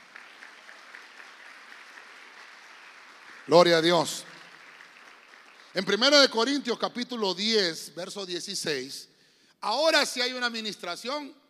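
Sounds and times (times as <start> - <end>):
crowd clapping steadily for the Lord: 0.0 - 6.8
speech: 3.5 - 4.3, 5.8 - 11.4.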